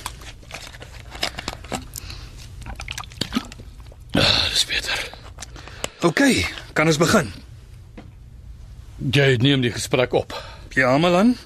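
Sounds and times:
water poured from a bottle at a table: 1.7s - 4.1s
speech: 4.6s - 5.2s, 6.0s - 7.4s, 9.0s - 11.4s.

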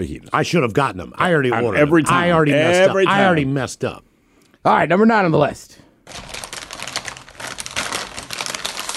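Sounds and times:
speech: 0.0s - 6.2s
potato chip bag being opened and handled: 6.1s - 8.9s.

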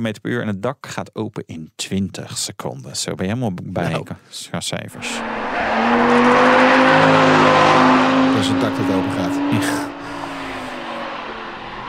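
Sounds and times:
speech: 0.0s - 9.9s
naturally aspirated V10 engine revving: 5.0s - 11.8s.

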